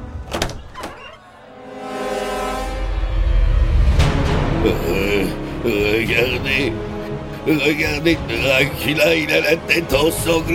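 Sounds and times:
door opening mechanically: 0:00.1 - 0:01.4
low rumble: 0:02.8 - 0:06.3
speech: 0:04.6 - 0:10.5.

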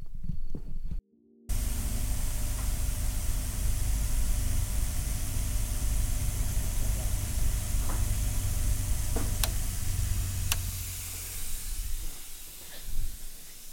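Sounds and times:
faint clicks: 0:01.5 - 0:11.5
magnetic polishing machine running: 0:01.5 - 0:13.7.

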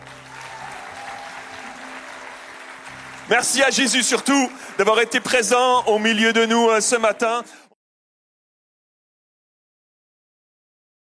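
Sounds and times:
large group applauding: 0:00.0 - 0:07.4
speech: 0:03.3 - 0:07.6.

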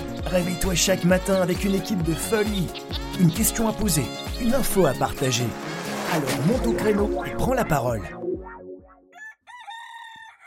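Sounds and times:
speech: 0:00.2 - 0:08.6
rooster crowing in the morning: 0:09.1 - 0:10.4.

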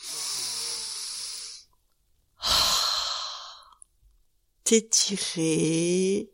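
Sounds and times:
long deep breath drawn in: 0:00.0 - 0:01.7, 0:02.4 - 0:03.8
stronger airy breath released: 0:00.0 - 0:01.7, 0:02.4 - 0:03.8
speech: 0:04.7 - 0:06.3.

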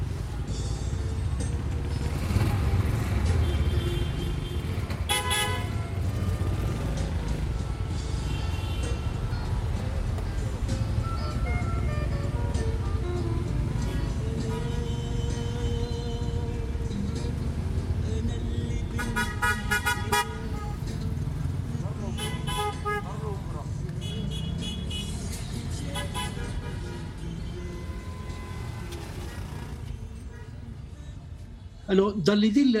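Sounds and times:
taxi engine and road rumble in Algiers street traffic: 0:00.0 - 0:32.2
car horn toots in Algiers street traffic: 0:03.4 - 0:05.8, 0:19.0 - 0:20.8, 0:22.2 - 0:23.2, 0:25.9 - 0:29.4
speech: 0:31.9 - 0:32.7.

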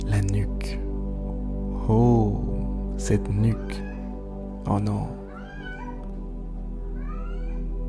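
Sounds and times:
speech: 0:00.1 - 0:00.9, 0:01.9 - 0:03.9, 0:04.6 - 0:05.2
cat meowing: 0:03.5 - 0:04.1, 0:05.3 - 0:06.1, 0:06.9 - 0:07.7.

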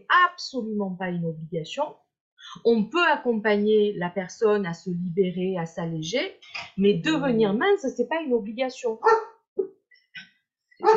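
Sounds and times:
speech: 0:00.1 - 0:09.8
dog barking: 0:09.0 - 0:09.4.

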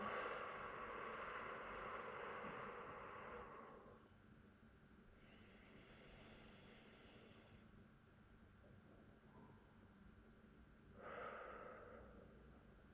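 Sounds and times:
deep inhale and exhale: 0:00.0 - 0:04.1, 0:05.2 - 0:07.7, 0:10.9 - 0:12.6.

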